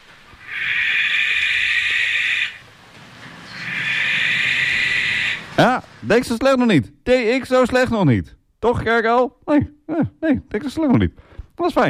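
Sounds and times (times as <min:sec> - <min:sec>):
barn owl screeching and hissing: 0:00.4 - 0:05.8
speech: 0:05.6 - 0:11.8.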